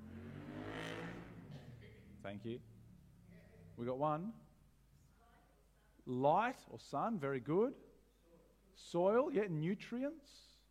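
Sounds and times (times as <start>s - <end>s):
motorbike engine droning past: 0.0s - 3.8s
speech: 2.2s - 2.7s, 3.8s - 4.5s, 6.0s - 7.9s, 8.8s - 10.5s.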